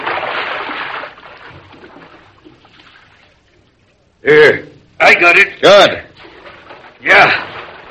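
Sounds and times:
water trickling and lapping: 0.0 - 4.2, 6.1 - 7.8
speech: 4.2 - 4.6, 5.2 - 6.1.

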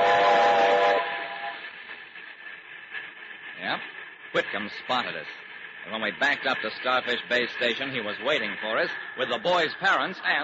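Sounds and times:
locomotive whistle blowing from the cab on a trestle: 0.0 - 1.6
speech: 3.8 - 10.4.

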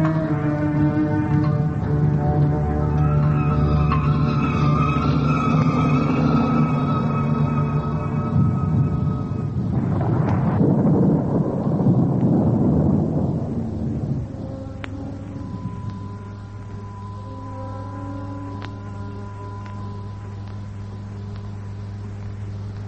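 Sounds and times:
rolling thunder of a gathering thunderstorm: 0.0 - 17.2
steady humming drone: 0.0 - 22.8.

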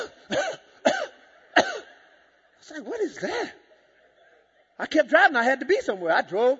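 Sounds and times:
person coughing imitating a sputtering car engine: 0.0 - 2.0
speech: 2.7 - 3.6, 4.8 - 6.5.

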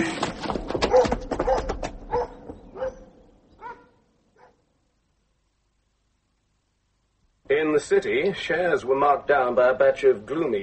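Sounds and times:
big dog barking: 0.8 - 4.6
speech: 7.8 - 10.6.

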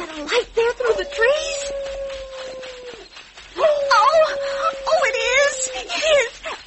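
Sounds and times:
speech: 0.2 - 1.4
wolf howling: 0.3 - 6.1.

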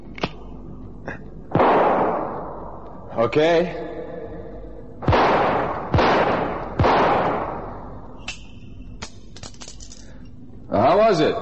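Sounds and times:
gunshots fired at targets: 1.5 - 2.5, 5.0 - 7.8
speech: 3.2 - 3.9, 11.1 - 11.4.

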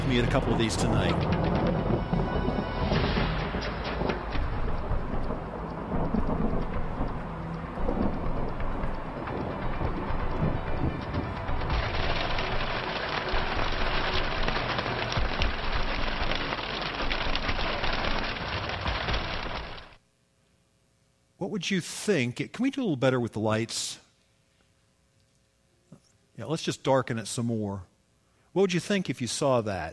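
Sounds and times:
deep thunder rumbling in a violent thunderstorm: 0.0 - 20.0
heavy rain pouring in a violent thunderstorm: 0.0 - 20.0
speech: 0.1 - 1.4, 21.6 - 24.0, 26.4 - 27.9, 28.5 - 29.9.

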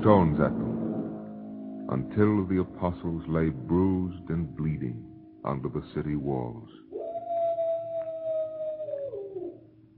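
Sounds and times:
speech: 0.0 - 0.8, 1.9 - 6.8
wild dogs howling: 6.9 - 9.7.

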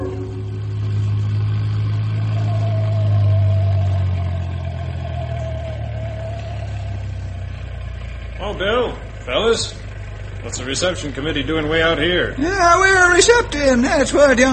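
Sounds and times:
faint engine whine: 0.0 - 7.5
truck engine idling with a deep low rumble: 0.0 - 14.5
speech: 8.6 - 9.8, 10.4 - 14.5.

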